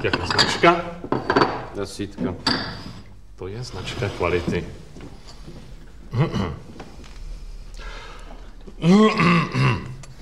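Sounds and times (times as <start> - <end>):
speech: 0.0 - 1.0, 1.8 - 2.8, 3.4 - 5.2, 6.1 - 6.7, 8.8 - 9.8
faint noise: 0.0 - 10.1
man clearing his throat with rough gravelly coughs: 6.1 - 6.7, 8.8 - 10.1.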